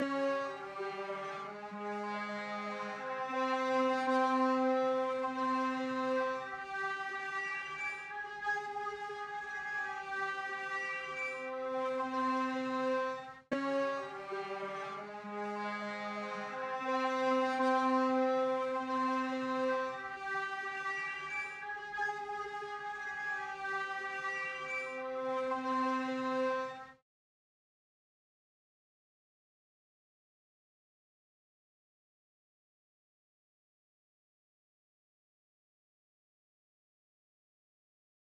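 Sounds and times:
142 BPM F minor strings loop for drill music: 0.0s - 26.2s.

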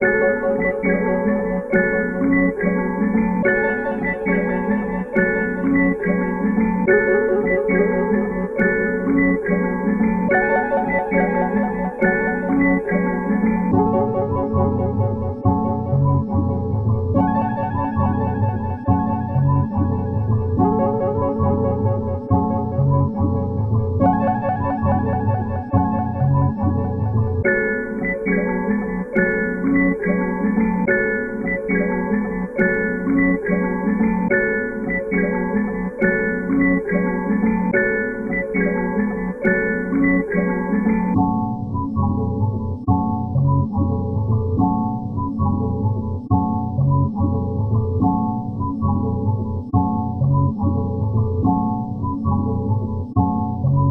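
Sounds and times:
trap melody: 0.0s - 52.9s.

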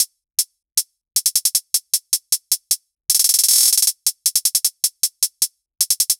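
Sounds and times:
hybrid trap kit hi-hats at 155 bpm: 1.2s - 6.1s.

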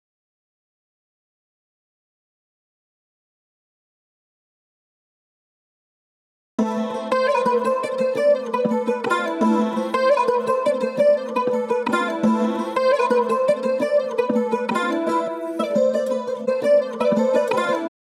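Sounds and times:
saz playing in A minor: 6.6s - 17.9s.

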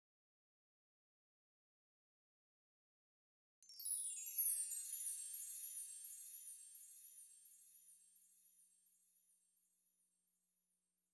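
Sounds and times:
chimes melody loop in D sharp minor: 3.7s - 8.2s.

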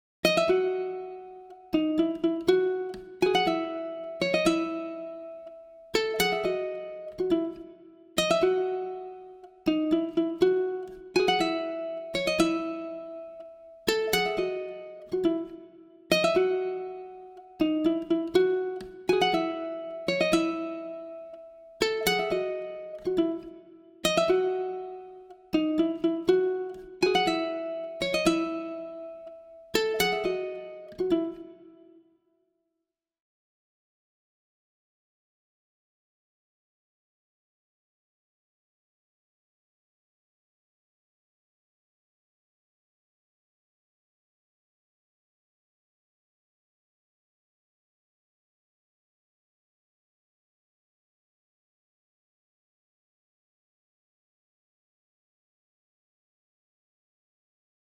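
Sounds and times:
ukulele loop in C sharp minor: 0.2s - 31.9s.

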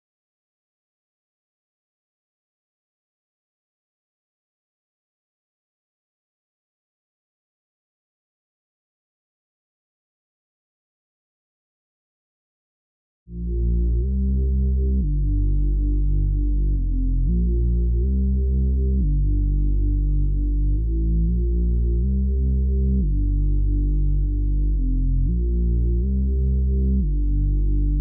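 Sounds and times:
bass line in A sharp major: 13.3s - 27.9s.

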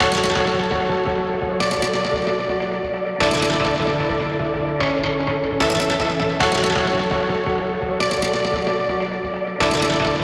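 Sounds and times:
synth in F sharp minor: 0.0s - 10.2s.

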